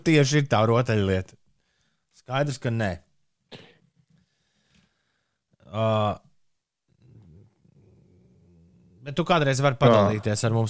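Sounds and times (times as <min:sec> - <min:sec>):
speech: 0:00.0 - 0:01.4, 0:02.3 - 0:03.7, 0:05.7 - 0:06.2, 0:09.0 - 0:10.6
cat purring: 0:06.9 - 0:10.2.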